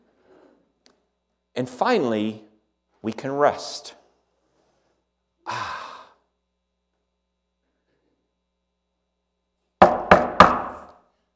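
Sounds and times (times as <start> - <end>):
speech: 1.6 - 4.0, 5.5 - 5.7
knocking on a door: 9.8 - 10.9.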